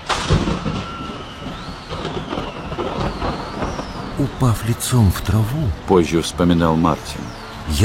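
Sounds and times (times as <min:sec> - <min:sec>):
loud rolling thunderclap: 0:00.0 - 0:05.9
heavy storm rumble: 0:00.0 - 0:06.4
steady rain-like hiss: 0:01.5 - 0:07.8
speech: 0:04.2 - 0:07.8.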